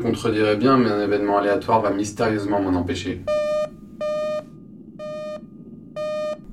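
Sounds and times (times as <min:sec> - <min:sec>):
speech: 0:00.0 - 0:03.4
low hum: 0:00.0 - 0:06.5
electronic alert beeps signalling an incoming encrypted telemessage: 0:03.3 - 0:05.4.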